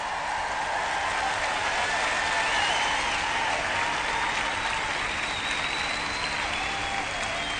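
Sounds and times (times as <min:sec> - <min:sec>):
audience applause: 0:00.0 - 0:07.5.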